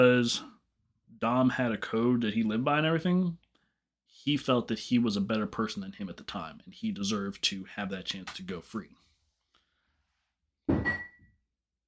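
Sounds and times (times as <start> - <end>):
speech: 0.0 - 0.5, 1.2 - 3.4, 4.1 - 9.0
dull thud of an object knocked over by a cat: 10.7 - 11.2.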